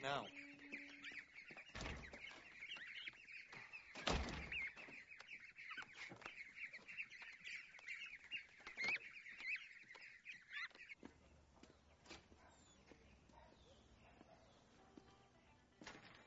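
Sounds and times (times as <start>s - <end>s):
speech: 0.0s - 0.5s
goslings peeping in high thin chirps: 0.0s - 14.7s.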